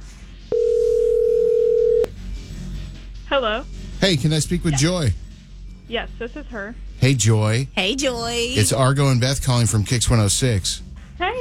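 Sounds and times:
quiet phone line hiss: 0.5 - 2.1
telephone ringback tone: 0.5 - 2.1
speech: 3.4 - 5.2, 5.9 - 11.3.

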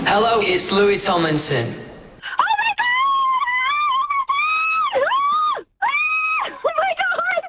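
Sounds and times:
speech: 0.2 - 1.9
female fan screaming with excitement as a singer walks on stage: 2.4 - 7.4.

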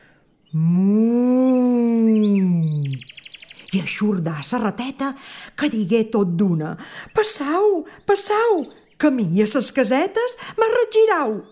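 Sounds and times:
speech: 0.5 - 0.9, 3.8 - 11.4
voice imitating an ox mooing: 0.6 - 3.0.

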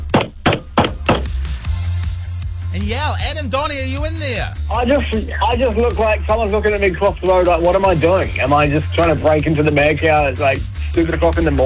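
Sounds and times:
banging on a closed nightclub door: 0.0 - 1.4
speech: 2.8 - 11.6.

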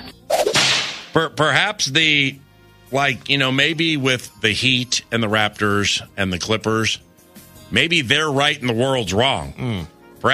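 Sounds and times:
whip crack: 0.3 - 1.2
speech: 1.1 - 7.1, 7.7 - 10.3.

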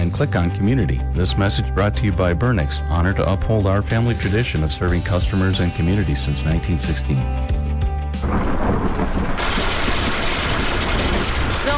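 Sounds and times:
speech: 0.2 - 7.6
low thunder rumbling: 8.2 - 11.7
pelting hail and precipitation in a thunderstorm: 8.2 - 11.7.

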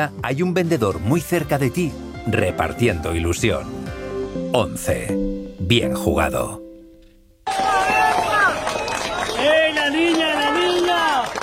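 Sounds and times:
speech: 0.0 - 6.6
crowd cheering and shouting over the rescue of a girl after an earthquake: 7.5 - 11.4.

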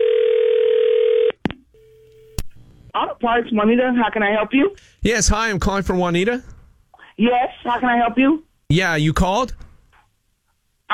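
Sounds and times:
telephone handset dial tone: 0.0 - 2.4
speech: 3.2 - 6.5, 7.2 - 9.6.

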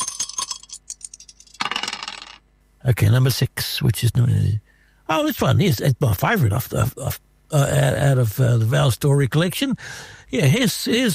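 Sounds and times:
dice tossed and tumbling: 0.0 - 2.4
speech: 2.9 - 11.1.

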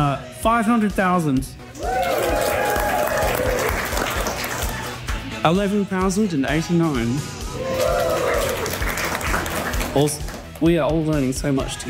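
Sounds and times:
speech: 0.1 - 2.2, 5.4 - 7.4, 10.0 - 11.8
crowd cheering with whoops and shouts: 1.8 - 4.6, 7.5 - 9.5
loud audience clapping: 1.8 - 5.3, 7.6 - 10.8.

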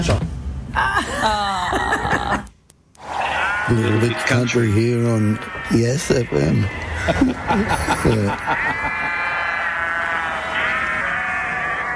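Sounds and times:
speech: 0.0 - 1.8, 3.7 - 8.9
laughter: 0.8 - 2.5, 6.7 - 9.5
sheep bleating: 3.3 - 11.9.

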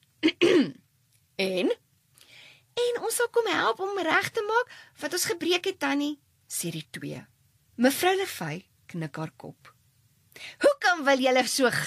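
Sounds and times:
man clearing his throat: 0.2 - 0.8
speech: 1.4 - 1.8, 3.1 - 9.7, 10.4 - 11.8.

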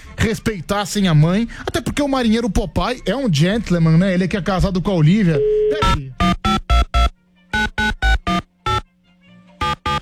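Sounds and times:
speech: 0.2 - 6.3
telephone ringing on an outgoing call: 5.8 - 8.8, 9.6 - 10.0.

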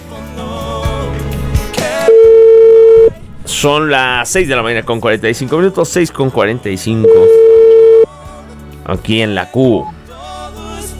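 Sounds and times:
phone line tone on an outgoing call: 2.0 - 3.2, 7.0 - 8.1
short high beep: 2.0 - 3.2, 7.0 - 8.1
speech: 3.6 - 7.5, 8.9 - 10.0.

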